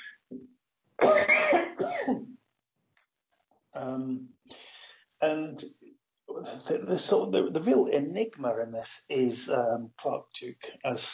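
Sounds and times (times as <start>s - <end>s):
raspy throaty coughing and throat sounds: 1.0s - 2.2s
speech: 5.3s - 5.8s, 6.7s - 11.1s.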